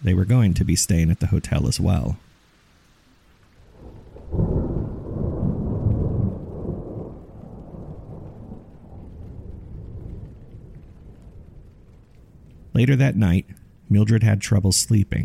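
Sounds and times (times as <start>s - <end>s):
speech: 0.0s - 2.3s, 12.8s - 15.2s
steady low wash of rain: 0.0s - 15.2s
deep rolling thunder: 3.6s - 12.8s.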